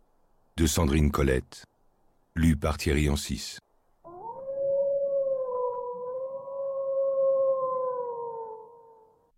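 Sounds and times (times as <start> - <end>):
speech: 0.6 - 1.7, 2.4 - 3.6
wolf howling: 4.0 - 9.3.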